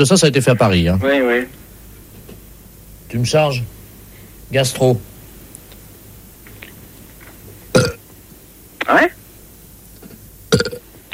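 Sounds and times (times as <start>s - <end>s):
speech: 0.0s - 1.6s, 3.1s - 3.8s, 4.5s - 5.1s
loud burps played as telephone hold music: 7.7s - 8.0s, 10.5s - 11.1s.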